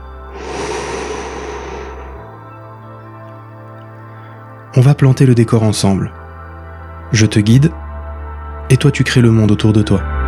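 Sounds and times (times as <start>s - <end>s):
slow calm exhale during a guided breathing exercise: 0.0s - 2.7s
speech: 4.8s - 6.2s, 7.1s - 7.8s, 8.7s - 10.1s.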